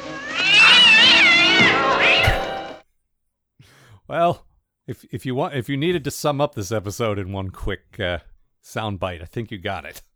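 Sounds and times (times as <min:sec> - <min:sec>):
cat yowling as it is thrown: 0:00.0 - 0:02.8
speech: 0:04.1 - 0:10.1.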